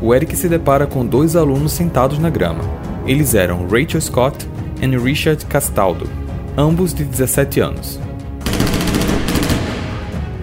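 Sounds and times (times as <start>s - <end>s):
speech: 0.0s - 8.1s
loud burst of rapid gunfire: 8.4s - 10.2s.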